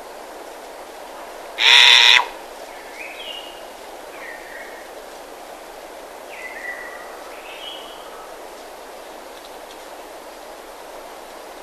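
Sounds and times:
background hiss: 0:00.0 - 0:11.6
Verreaux's sifaka rasping call: 0:01.6 - 0:02.4.

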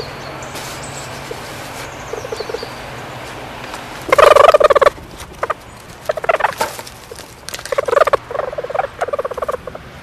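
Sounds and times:
stoat chattering: 0:00.8 - 0:09.8.

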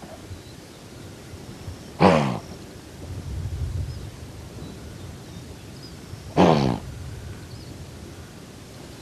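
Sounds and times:
blue wildebeest giving harsh buzzy grunts: 0:02.0 - 0:02.5, 0:06.3 - 0:06.9.

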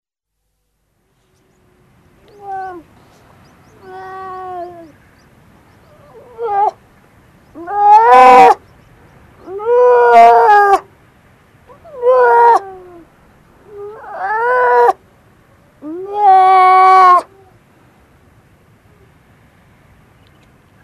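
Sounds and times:
grey seal moaning and wailing: 0:03.8 - 0:05.0, 0:05.9 - 0:06.8, 0:07.6 - 0:08.6, 0:09.5 - 0:10.8, 0:11.7 - 0:15.0, 0:15.8 - 0:17.5.

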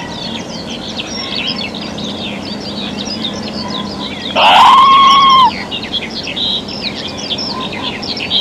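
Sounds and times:
background birdsong and chirps: 0:00.0 - 0:08.3
red squirrel giving an upswept call levelling into a whine: 0:04.3 - 0:05.6.

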